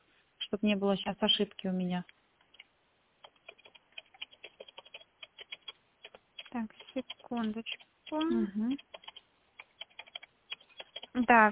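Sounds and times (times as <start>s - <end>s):
speech: 0.5s - 2.2s, 6.6s - 9.1s, 11.1s - 11.5s
computer keyboard typing as a comment is written: 2.5s - 11.5s.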